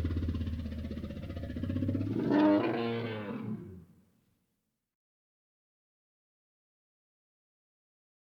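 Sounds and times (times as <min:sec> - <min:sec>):
lion roaring: 0:00.0 - 0:03.9.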